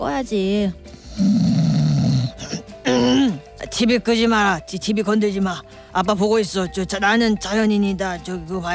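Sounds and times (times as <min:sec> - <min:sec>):
speech: 0:00.0 - 0:01.5, 0:03.8 - 0:08.7
man snoring: 0:01.0 - 0:03.4.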